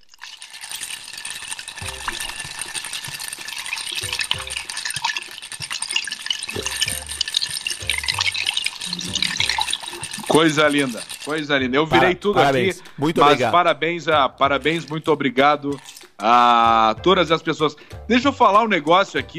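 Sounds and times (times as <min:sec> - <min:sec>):
ice shaken in a glass at home imitating a rattlesnake: 0:00.0 - 0:13.5, 0:14.6 - 0:16.6
speech: 0:10.3 - 0:19.3.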